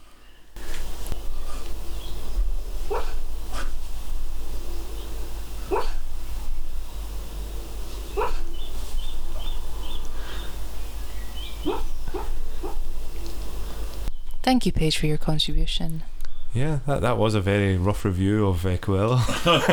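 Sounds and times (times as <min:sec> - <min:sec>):
steady low hum: 0:00.0 - 0:19.7
dog doing small barks and soft yips while dreaming: 0:05.7 - 0:06.0
speech: 0:14.5 - 0:19.7
laughter: 0:18.9 - 0:19.7.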